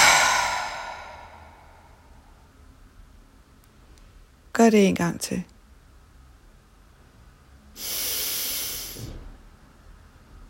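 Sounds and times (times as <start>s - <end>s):
long breathy exhalation: 0.0s - 2.0s, 7.8s - 9.1s
speech: 4.6s - 5.5s.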